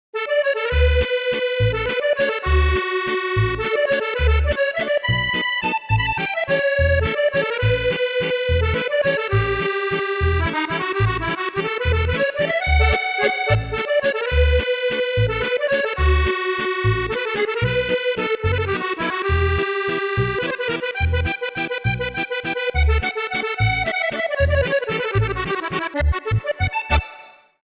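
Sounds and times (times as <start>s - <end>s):
waltz music: 0.2s - 27.6s.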